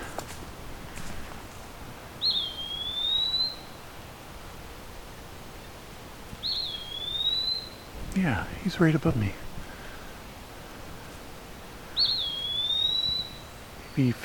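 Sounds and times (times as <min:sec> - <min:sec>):
eastern woodpecker giving high whistled calls on a dead branch under the canopy: 0:02.2 - 0:03.8, 0:06.4 - 0:07.9, 0:11.9 - 0:14.0
speech: 0:08.2 - 0:09.4, 0:14.0 - 0:14.2.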